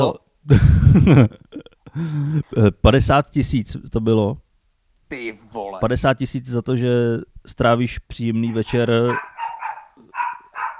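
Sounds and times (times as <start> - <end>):
speech: 0.0 - 4.4, 5.1 - 9.3
laughter: 0.5 - 1.7
dog in heat barking: 8.4 - 10.7.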